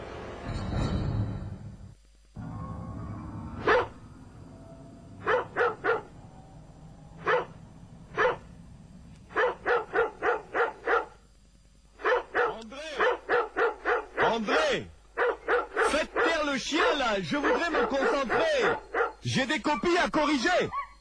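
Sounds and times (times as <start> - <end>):
low rumble: 0.5 - 9.4
dog barking: 3.6 - 4.0, 5.2 - 6.2, 7.2 - 8.5, 9.3 - 11.2, 12.0 - 14.3, 15.2 - 20.0, 20.7 - 20.9
speech: 17.2 - 18.3, 19.4 - 20.8.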